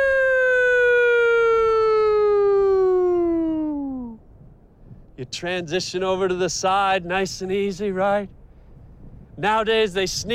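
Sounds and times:
police siren wail sliding downward in pitch: 0:00.0 - 0:04.2
speech: 0:05.2 - 0:08.4, 0:09.4 - 0:10.3.

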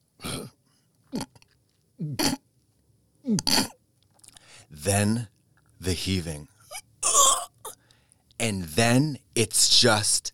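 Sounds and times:
voice imitating belching: 0:01.1 - 0:01.4, 0:02.0 - 0:02.4, 0:03.3 - 0:03.8, 0:06.7 - 0:07.5
speech: 0:04.8 - 0:06.5, 0:08.4 - 0:10.3.

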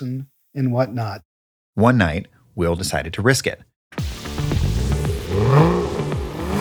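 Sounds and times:
speech: 0:00.0 - 0:04.1
Ferrari sports car engine revving: 0:04.0 - 0:06.5.

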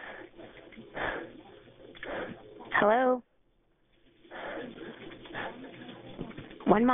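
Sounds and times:
heavy breathing over a muffled telephone line during an emergency call: 0:00.0 - 0:02.5, 0:04.2 - 0:06.0
speech: 0:02.8 - 0:03.3, 0:06.7 - 0:06.9.

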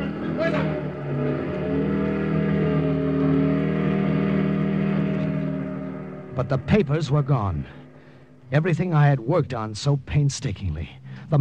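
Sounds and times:
parked motorcycle started, revving and driving off: 0:00.0 - 0:08.5
speech: 0:06.4 - 0:07.8, 0:08.5 - 0:11.3.

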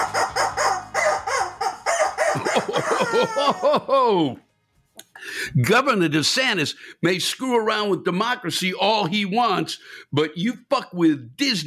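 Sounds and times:
rubber chicken toy squawking: 0:00.0 - 0:03.1
laughter: 0:02.2 - 0:04.4
speech: 0:03.2 - 0:04.4, 0:05.4 - 0:11.6.

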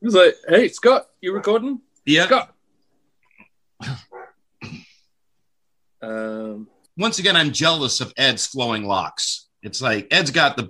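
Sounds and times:
speech: 0:00.0 - 0:02.5, 0:03.8 - 0:04.1, 0:06.0 - 0:10.6
neighbor's dog barking and howling: 0:04.1 - 0:04.4.

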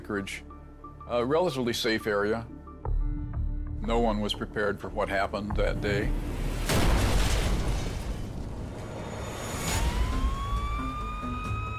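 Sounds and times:
speech: 0:00.1 - 0:00.5, 0:01.1 - 0:02.6, 0:03.8 - 0:06.8
loud deep explosion in Chugiak outside Anchorage: 0:06.0 - 0:10.8
siren wailing: 0:09.1 - 0:11.7.

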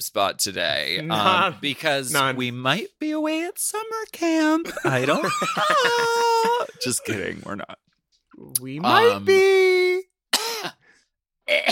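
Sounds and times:
speech: 0:00.0 - 0:07.8, 0:08.4 - 0:10.8, 0:11.5 - 0:11.7
laughter: 0:04.6 - 0:07.2
person coughing: 0:10.3 - 0:10.8, 0:11.5 - 0:11.7
person clearing throat: 0:10.4 - 0:10.8, 0:11.5 - 0:11.7.

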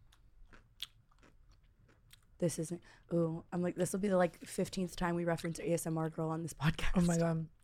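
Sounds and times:
wet crunching and chewing of a pickle: 0:00.0 - 0:02.4
speech: 0:02.4 - 0:07.6.

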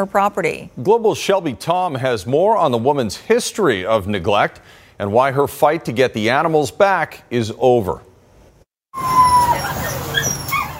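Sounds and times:
speech: 0:00.0 - 0:08.1
seized puppy whimpering with high-pitched whines: 0:09.0 - 0:10.7.

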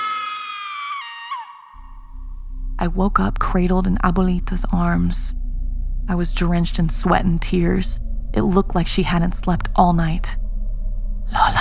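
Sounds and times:
blood-curdling scream: 0:00.0 - 0:01.8
faint low rumble: 0:01.8 - 0:11.6
speech: 0:02.8 - 0:05.4, 0:06.1 - 0:10.4.

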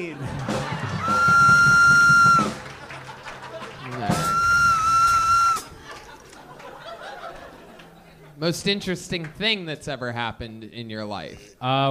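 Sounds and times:
speech: 0:00.0 - 0:00.8, 0:08.4 - 0:11.8
laughter: 0:00.0 - 0:08.4
safety whistle being blown: 0:01.0 - 0:02.6, 0:04.1 - 0:05.7.

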